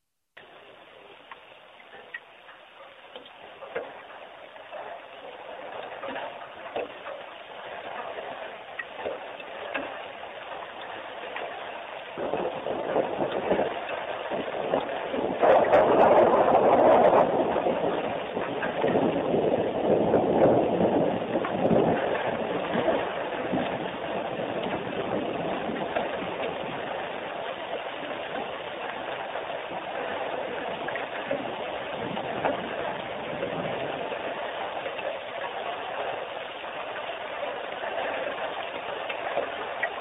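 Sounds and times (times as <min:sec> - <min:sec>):
rain: 0:00.0 - 0:39.9
thunder: 0:12.2 - 0:27.0.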